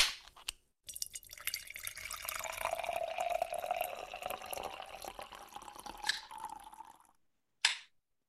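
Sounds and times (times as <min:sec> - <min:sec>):
beer fizzing in a can: 0:00.9 - 0:07.1
beer can being opened: 0:05.9 - 0:06.4.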